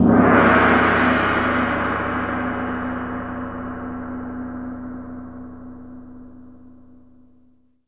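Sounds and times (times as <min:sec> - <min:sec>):
muted gong single hit: 0:00.0 - 0:06.3.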